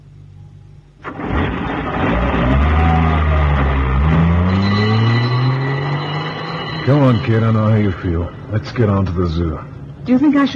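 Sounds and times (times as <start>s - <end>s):
ambulance engine roaring and revving while pulling up: 1.0s - 8.1s
speech: 6.9s - 10.5s.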